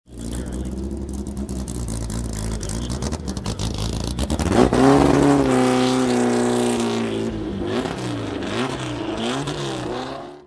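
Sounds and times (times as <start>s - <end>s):
Porsche Speedster engine revving: 0.1s - 10.4s.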